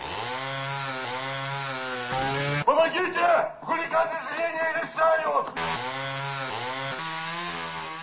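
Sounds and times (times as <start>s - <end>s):
power saw droning as it cuts: 0.0s - 2.7s, 5.6s - 8.0s
speech: 2.9s - 6.0s.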